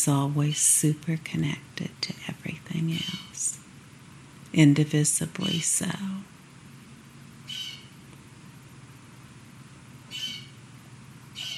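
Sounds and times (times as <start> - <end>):
speech: 0.0 - 3.6, 4.5 - 6.3
low steady rumble: 0.0 - 11.5
bird calling outdoors: 2.9 - 3.5, 7.4 - 8.0, 10.1 - 10.6, 11.4 - 11.5.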